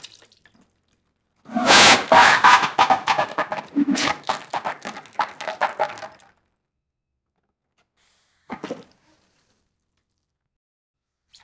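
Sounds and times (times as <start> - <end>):
explosive diarrhea splattering into a bucket: 1.5 - 6.1.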